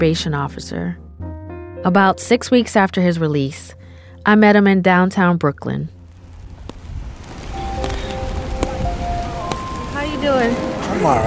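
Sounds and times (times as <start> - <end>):
speech: 0.0 - 1.0, 1.8 - 6.0, 10.2 - 11.2
low traffic rumble: 5.7 - 11.2
rain hissing on a city street in downtown Brooklyn New York City: 6.0 - 11.2.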